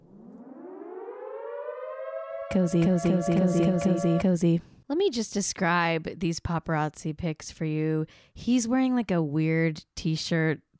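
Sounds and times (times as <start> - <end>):
siren-like alarm sound effect wailing upward in pitch: 0.0 - 4.6
speech: 2.5 - 10.7.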